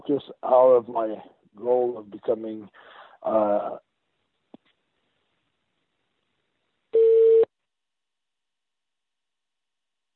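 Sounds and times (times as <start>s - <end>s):
speech: 0.1s - 3.9s
electronic beep on a telephone line: 7.0s - 7.5s.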